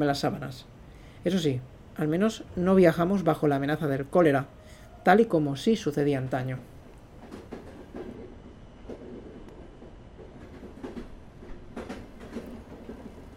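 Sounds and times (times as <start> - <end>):
speech: 0.0 - 6.7
passenger train hauled by a locomotive rumbling: 0.0 - 13.3
passenger train wheels clattering over rail joints: 6.5 - 13.3.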